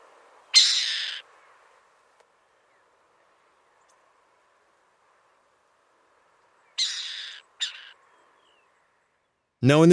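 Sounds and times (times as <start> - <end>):
faint noise: 0.0 - 9.9
burrowing owl rasp calls in Bolivia: 0.5 - 1.2, 6.8 - 8.0
speech: 9.6 - 9.9.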